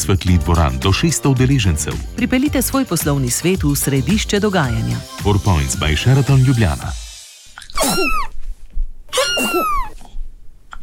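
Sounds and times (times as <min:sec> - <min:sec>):
speech: 0:00.0 - 0:07.0
cat coughing: 0:07.8 - 0:08.2, 0:09.1 - 0:09.9.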